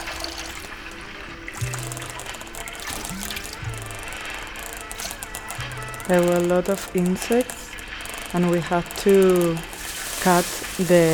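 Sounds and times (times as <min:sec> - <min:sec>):
speech: 0:06.1 - 0:07.6, 0:08.3 - 0:11.1
several people's footsteps squelching through waterlogged muddy soil: 0:09.6 - 0:11.1.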